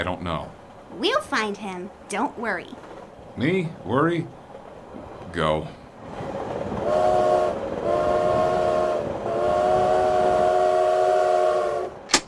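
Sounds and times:
speech: 0.0 - 4.4, 5.0 - 5.8
moving train rumbling on rails: 0.0 - 12.2
loud train horn blasts: 6.8 - 12.1
sharp click: 12.1 - 12.2.

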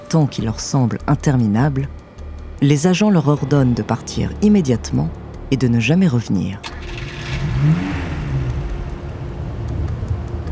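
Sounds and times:
speech: 0.1 - 2.0, 2.6 - 7.9
car accelerating away from a military base: 5.0 - 10.5.

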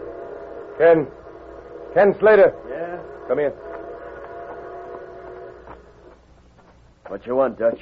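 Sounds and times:
distant whistle of an approaching train: 0.0 - 6.2
speech: 0.8 - 1.2, 2.0 - 3.7, 7.1 - 7.8.

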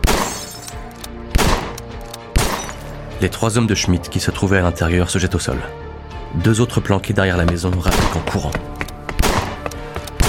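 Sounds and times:
heavy gunshots through a door and windows: 0.0 - 0.6, 1.3 - 2.8, 7.9 - 8.4, 9.2 - 10.2
speech: 3.2 - 8.8.

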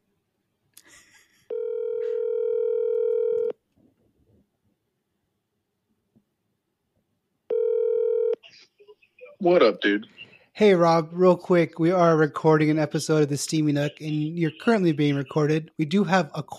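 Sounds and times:
phone line ringing with a buzzing electronic tone: 1.5 - 3.6, 7.5 - 8.4
speech: 9.4 - 16.5.

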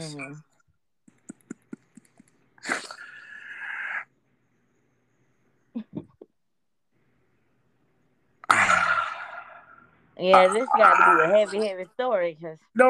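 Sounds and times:
speech: 0.0 - 0.5, 10.2 - 12.8
heavy breathing: 1.4 - 4.1.

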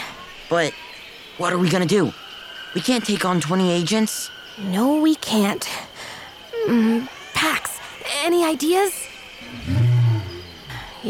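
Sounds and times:
speech: 0.5 - 2.2, 2.8 - 5.9, 6.6 - 7.6, 8.2 - 9.8
lion roaring: 9.4 - 10.9.

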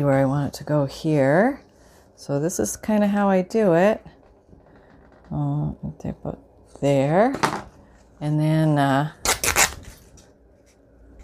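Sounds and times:
speech: 0.0 - 1.6, 2.2 - 4.2, 5.3 - 9.2
fabric being torn along a straight line: 9.2 - 10.0.

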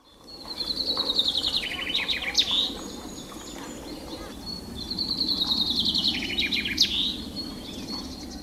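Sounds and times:
chaffinch singing trilled phrases with rising flourish: 0.0 - 8.4.

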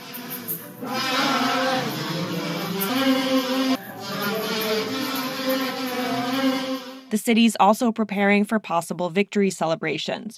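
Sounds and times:
group of kazoos buzzing a melody: 0.0 - 7.1
speech: 7.1 - 10.3.

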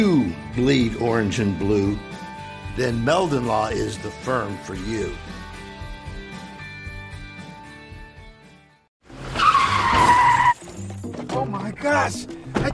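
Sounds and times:
speech: 0.0 - 2.2, 2.8 - 5.4
truck tires screeching in a skid during a crash: 9.1 - 10.6.

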